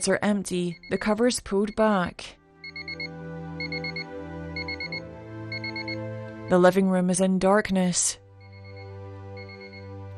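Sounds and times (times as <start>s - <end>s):
speech: 0.0s - 2.4s, 6.5s - 8.2s
alarm clock ringing with rapid high electronic beeps: 0.6s - 2.0s, 2.6s - 6.0s, 8.4s - 9.9s.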